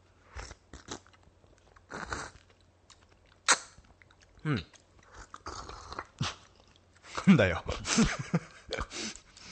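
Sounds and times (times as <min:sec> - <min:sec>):
slurping and chewing vinegared mozuku seaweed eaten in haste: 0:00.2 - 0:07.2
speech: 0:04.4 - 0:04.8, 0:07.3 - 0:09.1
laughter: 0:07.7 - 0:08.9.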